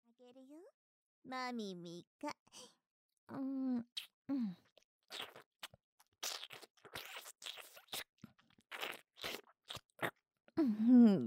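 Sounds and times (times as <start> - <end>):
speech: 0.2 - 5.5, 10.6 - 11.2
person humming: 3.3 - 4.6
crunchy food being chewed: 4.7 - 10.2.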